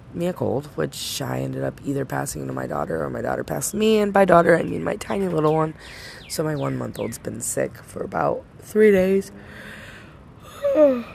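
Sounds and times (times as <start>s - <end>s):
speech: 0.1s - 9.8s
person yawning: 10.4s - 11.1s.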